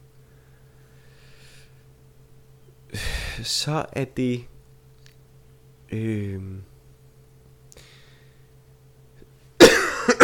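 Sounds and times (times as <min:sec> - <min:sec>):
low hum: 0:00.0 - 0:10.2
speech: 0:02.9 - 0:04.5, 0:05.9 - 0:06.7
person coughing loudly: 0:09.6 - 0:10.2.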